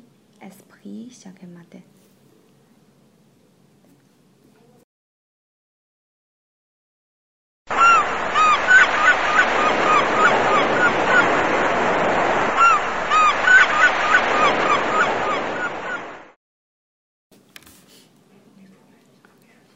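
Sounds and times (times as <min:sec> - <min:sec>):
speech: 0:00.4 - 0:02.1
seagulls calling by the sea: 0:07.7 - 0:16.3
waves of surf roaring: 0:07.7 - 0:16.4.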